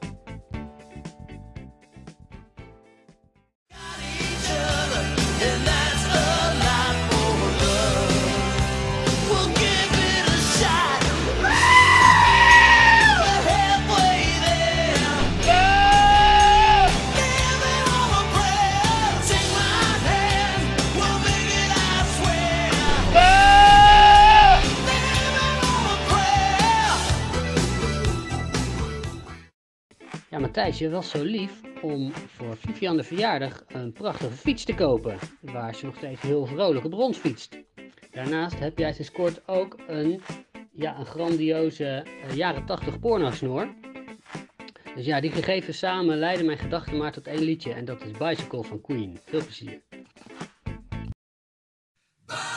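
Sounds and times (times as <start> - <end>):
loud full-band rock music: 4.2 - 29.4
speech: 30.8 - 37.6, 38.2 - 43.8, 45.0 - 50.3.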